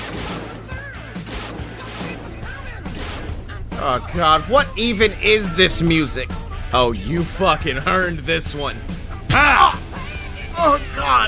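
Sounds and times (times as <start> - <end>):
video game gunfire bursts: 0.0 - 4.0
steady low drone: 2.2 - 11.2
speech: 3.8 - 9.6, 10.6 - 11.2.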